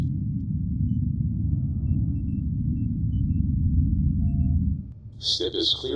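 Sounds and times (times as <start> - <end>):
spacecraft launch rumble: 0.0 - 5.9
speech: 5.2 - 5.9.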